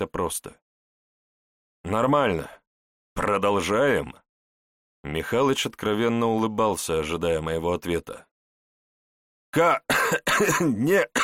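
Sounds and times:
speech: 0:00.0 - 0:00.6, 0:01.8 - 0:02.6, 0:03.2 - 0:04.2, 0:05.0 - 0:08.3, 0:09.5 - 0:11.2
battered man with split lips coughing during sparring: 0:09.8 - 0:11.2.

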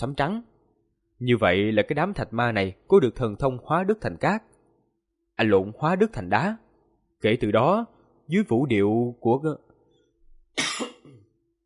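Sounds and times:
speech: 0:00.0 - 0:00.5, 0:01.2 - 0:04.5, 0:05.4 - 0:06.6, 0:07.2 - 0:09.6
person coughing from phlegm in the throat: 0:10.6 - 0:11.3.

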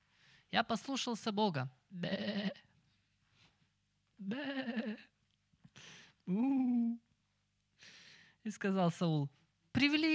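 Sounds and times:
speech: 0:00.5 - 0:02.7, 0:04.2 - 0:05.1, 0:05.8 - 0:07.0, 0:08.4 - 0:10.1
sheep bleating: 0:04.2 - 0:05.1.

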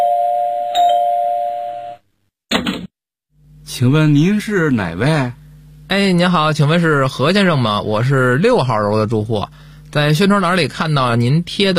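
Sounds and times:
electronic doorbell chime inside a home: 0:00.0 - 0:02.0
speech: 0:03.8 - 0:11.7.

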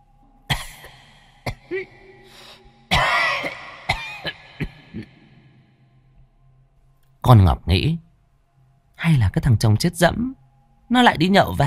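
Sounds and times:
old person clearing throat: 0:00.5 - 0:02.2, 0:02.9 - 0:05.4
old person coughing hoarsely: 0:00.5 - 0:02.2, 0:02.9 - 0:05.4
speech: 0:01.7 - 0:02.5, 0:07.2 - 0:08.0, 0:09.0 - 0:11.6.

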